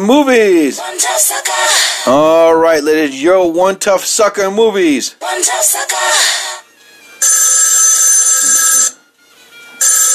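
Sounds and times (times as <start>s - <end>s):
speech: 0.0s - 6.5s
loud telephone bell ringing: 7.2s - 10.1s.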